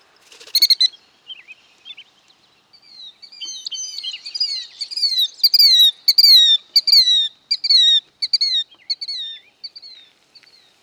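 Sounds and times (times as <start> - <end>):
killdeer Charadrius vociferus calling: 0.5 - 0.9, 3.2 - 10.0.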